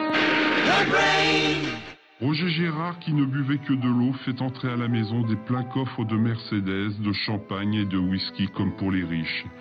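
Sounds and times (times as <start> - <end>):
train horn blaring with sustained pitch-bending tones: 0.1 - 2.0
speech: 0.8 - 9.5.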